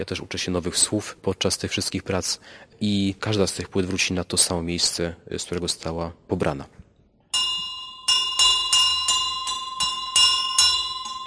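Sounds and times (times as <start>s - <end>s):
speech: 0.0s - 6.8s
small church bell ringing: 7.3s - 11.2s.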